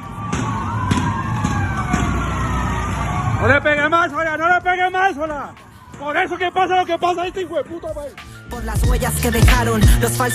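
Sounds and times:
police siren wailing: 0:00.0 - 0:08.2
street noise: 0:00.0 - 0:10.3
speech: 0:03.4 - 0:10.3.

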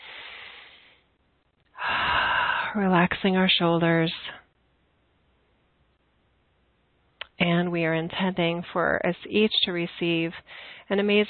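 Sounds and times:
deep breath during a guided relaxation: 0:00.0 - 0:01.1, 0:01.8 - 0:02.8, 0:10.4 - 0:10.9
forceful breath: 0:00.0 - 0:01.1, 0:01.8 - 0:02.8
speech: 0:02.8 - 0:04.4, 0:07.7 - 0:11.2.

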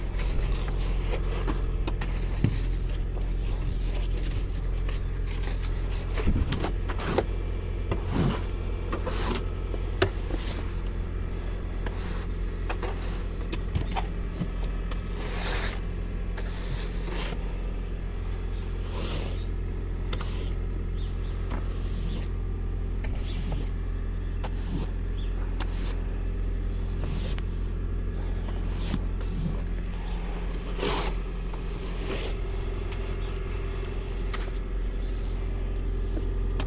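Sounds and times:
low rumble of city traffic: 0:00.0 - 0:36.6
scraping ice from windshield: 0:00.1 - 0:07.3, 0:07.9 - 0:09.5, 0:11.8 - 0:15.8, 0:16.4 - 0:17.5, 0:18.6 - 0:19.5, 0:20.1 - 0:20.6, 0:21.6 - 0:22.3, 0:23.0 - 0:23.8, 0:24.4 - 0:25.0, 0:26.8 - 0:27.4, 0:28.2 - 0:33.6.

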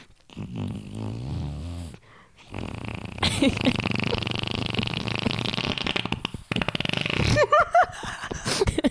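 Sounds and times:
person imitating a fluttering fart with their mouth: 0:00.4 - 0:01.9, 0:02.5 - 0:07.7.

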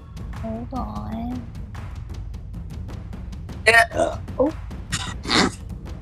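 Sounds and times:
speech: 0:00.4 - 0:01.6, 0:03.7 - 0:04.7
short throaty burp: 0:03.7 - 0:04.2, 0:05.0 - 0:05.6
hiccups: 0:03.7 - 0:04.4, 0:05.0 - 0:05.6.

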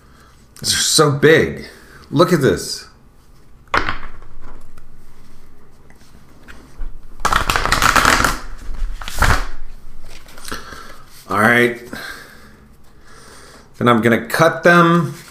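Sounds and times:
speech: 0:00.6 - 0:02.9, 0:13.8 - 0:15.2
riffle shuffling a deck of playing cards: 0:05.9 - 0:11.0.

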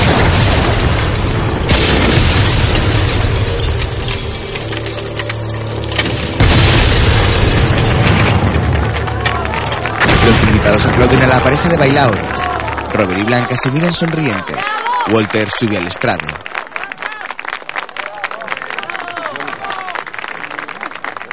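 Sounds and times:
houses exploding as burning oil reaches them in a dramatized film scene: 0:00.0 - 0:14.6
speech: 0:10.6 - 0:16.5.

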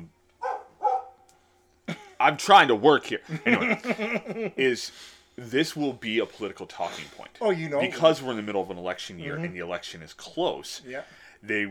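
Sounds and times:
dog whining briefly: 0:00.4 - 0:01.2
dog barking: 0:00.4 - 0:01.3
speech: 0:02.2 - 0:11.6
laughter: 0:03.2 - 0:04.8.

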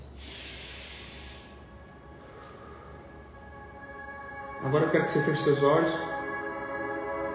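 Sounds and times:
soft airy breathing: 0:00.0 - 0:03.7
steady low hum: 0:00.0 - 0:07.3
strong breathy forceful exhale: 0:00.1 - 0:01.6
speech: 0:04.6 - 0:06.1.

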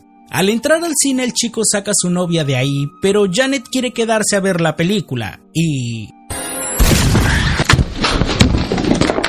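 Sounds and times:
speech: 0:00.3 - 0:06.2
sharp bangs: 0:06.4 - 0:08.6
explosion spreading through a shopping mall: 0:06.8 - 0:08.6.

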